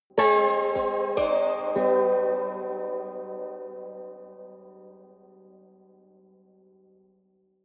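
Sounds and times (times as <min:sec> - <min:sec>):
haunted strings sequence played hard: 0:00.2 - 0:05.6.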